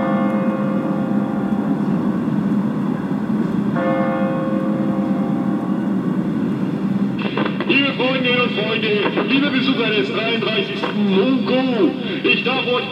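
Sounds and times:
large church bell striking the hours: 0:00.0 - 0:07.2
low outdoor rumble: 0:00.0 - 0:12.9
speech: 0:08.8 - 0:12.9.

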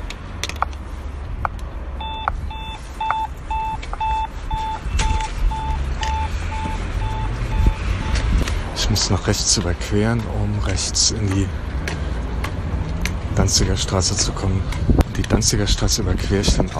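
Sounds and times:
continuous low traffic rumble: 0:00.0 - 0:16.7
pedestrian traffic light signal beeping at a crossing on Danziger Straße: 0:02.0 - 0:08.4
speech: 0:09.0 - 0:11.7, 0:13.4 - 0:16.7.

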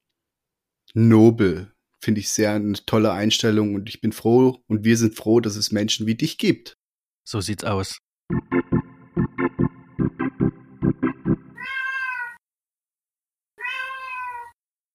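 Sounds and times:
speech: 0:00.9 - 0:08.5
short rhythmic tapping pulses: 0:08.3 - 0:11.6
19-year-old cat meowing: 0:11.6 - 0:12.4, 0:13.6 - 0:14.6.

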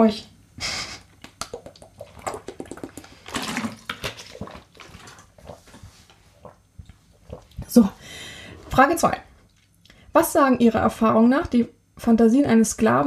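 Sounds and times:
speech: 0:00.0 - 0:00.9, 0:07.8 - 0:08.0, 0:08.8 - 0:09.3, 0:10.2 - 0:13.0
person sipping water: 0:01.2 - 0:08.7
breathing through the nose: 0:08.0 - 0:08.7.

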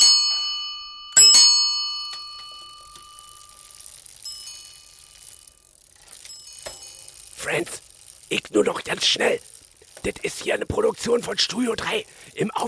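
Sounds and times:
bicycle bell pressed and rung loudly: 0:00.0 - 0:08.4
speech: 0:07.5 - 0:12.6.

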